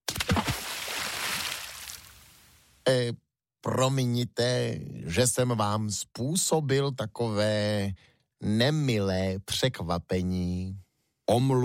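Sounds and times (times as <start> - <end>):
heavy splash into seawater: 0.1 - 2.2
speech: 2.9 - 11.6.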